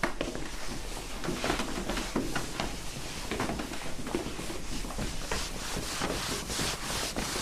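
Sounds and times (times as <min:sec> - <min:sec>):
several people shuffling and scraping feet across a floor: 0:00.1 - 0:07.4.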